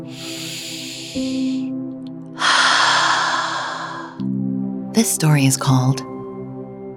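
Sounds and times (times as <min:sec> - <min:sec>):
slow deep breath drawn in and released in a long airy exhale: 0:00.0 - 0:01.7, 0:02.4 - 0:04.4
speech: 0:01.2 - 0:01.5, 0:05.0 - 0:06.1.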